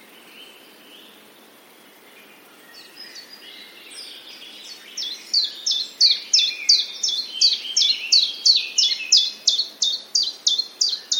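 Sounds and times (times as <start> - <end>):
common chiffchaff song: 2.7 - 11.1.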